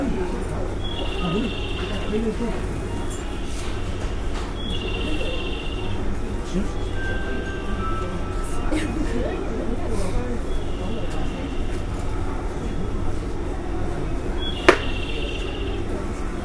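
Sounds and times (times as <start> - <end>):
201 series local train carriage rumble on the Osaka loop line: 0.0 - 16.4
people talking in a local train: 0.0 - 16.4
sharp click or knock: 14.6 - 15.0.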